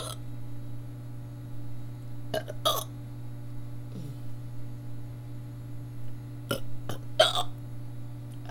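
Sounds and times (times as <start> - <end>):
steady low electrical hum: 0.0 - 8.4
person burping: 2.3 - 2.9, 6.5 - 7.6
sharp hiccup-like gulps: 2.3 - 2.9, 6.5 - 7.6.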